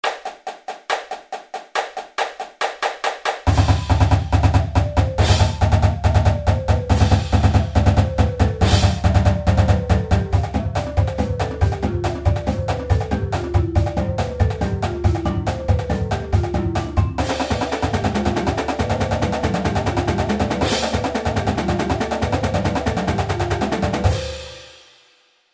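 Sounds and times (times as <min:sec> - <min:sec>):
triple drum beat: 0:00.0 - 0:25.0.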